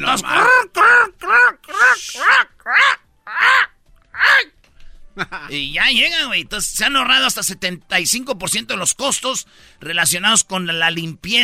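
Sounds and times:
speech: 0.0s - 0.9s, 5.5s - 11.4s
person imitating crows cawing: 0.0s - 4.6s.

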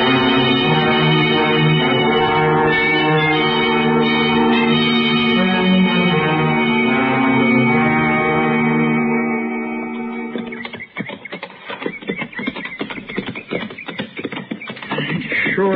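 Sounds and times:
sustained droning tone: 0.0s - 10.8s
several horses walking, hooves clip-clopping: 10.3s - 15.7s.

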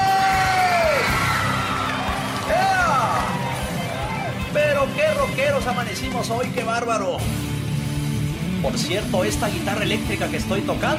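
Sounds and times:
crowd shouting and cheering for women: 0.0s - 6.6s
speech: 5.6s - 7.5s, 8.6s - 10.9s.

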